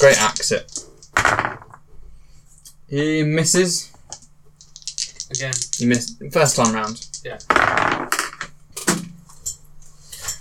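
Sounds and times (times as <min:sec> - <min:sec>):
speech: 0:00.0 - 0:01.6, 0:02.9 - 0:03.9, 0:05.3 - 0:08.2
dice bouncing off a table onto the floor: 0:00.0 - 0:01.8, 0:04.1 - 0:08.5.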